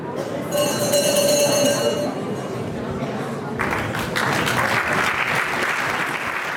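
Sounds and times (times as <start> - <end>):
murmuring voices: 0.0 - 4.0
hand bell rung by a jury at a yodelling singing event: 0.5 - 2.6
crowd applauding: 3.6 - 6.5.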